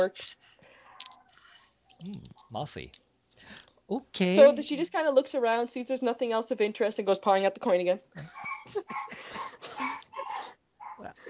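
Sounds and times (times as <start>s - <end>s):
speech: 0.0s - 0.4s, 2.0s - 11.2s
small dog whimpering and barking: 8.4s - 8.8s, 9.8s - 11.2s.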